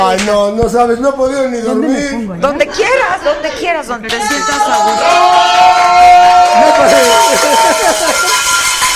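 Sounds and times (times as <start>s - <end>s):
speech: 0.2s - 8.9s
audience ovation of many overlapping cheering, whooping voices: 4.2s - 8.9s
laughter: 6.5s - 8.9s.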